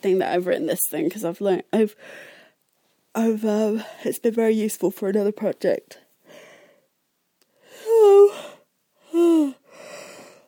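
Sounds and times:
speech: 0.0 - 2.4, 3.2 - 6.0
person yawning with a voiced groaning tone: 7.8 - 9.6.

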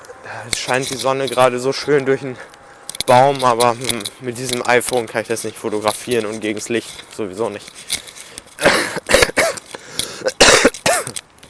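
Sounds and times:
speech: 0.3 - 8.1
throat clearing: 8.6 - 9.6, 10.2 - 11.2
person coughing: 8.6 - 11.2.

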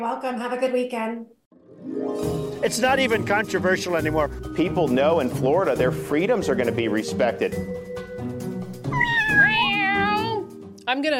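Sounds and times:
speech: 0.0 - 7.9, 10.9 - 11.1
cat meowing: 8.9 - 10.5.

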